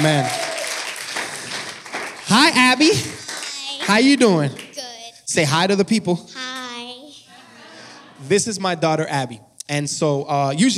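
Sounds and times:
speech: 0.0 - 0.4, 2.3 - 3.1, 3.9 - 4.6, 5.3 - 6.4, 8.2 - 10.7
crowd applauding: 0.0 - 4.8
laughter: 7.3 - 8.6.

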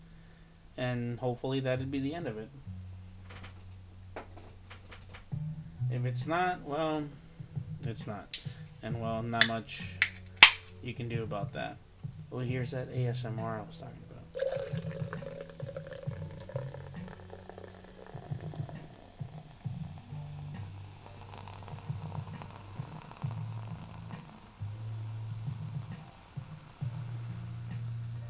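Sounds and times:
speech: 0.8 - 2.7, 5.9 - 7.2, 7.8 - 10.1, 10.8 - 14.0
carbonated drink fizzing as it is poured into a cup: 8.4 - 10.7, 14.2 - 28.2
carbonated drink pouring into a cup with low gurgling: 14.3 - 28.2.

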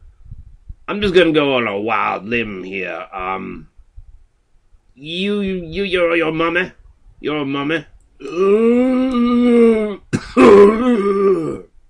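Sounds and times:
speech: 0.9 - 3.7, 5.0 - 11.6
person groaning: 8.2 - 11.7
harsh coughing burst: 10.1 - 10.8.

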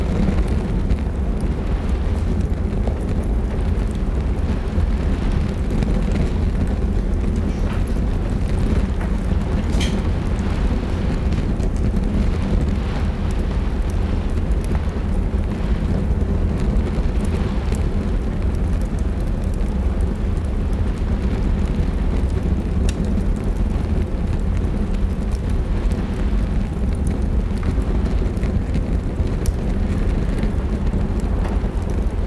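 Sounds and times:
deep constant rumble: 0.0 - 32.2
fireplace crackling: 0.0 - 32.2
steady rain beating on a window during a storm: 0.0 - 32.2.

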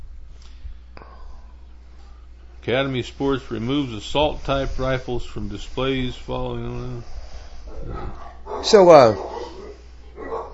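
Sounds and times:
faint low hum: 0.0 - 10.5
speech: 2.6 - 9.3
dog barking sharply outside: 7.7 - 10.5.

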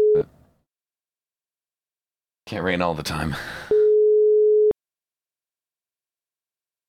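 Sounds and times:
brief telephone tone: 0.0 - 0.3, 3.7 - 4.8
speech: 0.2 - 0.4, 2.5 - 3.8
steady loud telephone hang-up beep: 3.7 - 4.8.

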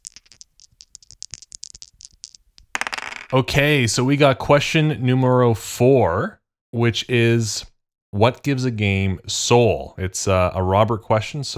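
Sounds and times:
dice rolling: 0.0 - 3.4
speech: 3.3 - 11.5.

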